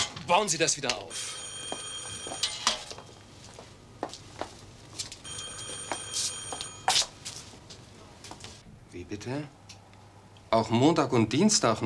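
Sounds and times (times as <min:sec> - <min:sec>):
speech: 0:00.3 - 0:01.8, 0:09.1 - 0:09.6, 0:10.5 - 0:11.8
telephone ringing with bright trilling bell tone: 0:01.1 - 0:03.6, 0:05.2 - 0:07.2.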